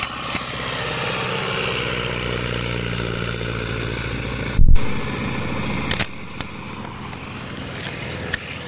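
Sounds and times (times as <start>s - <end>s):
propeller aircraft taking off: 0.6s - 8.3s
sharp burst: 4.6s - 7.8s.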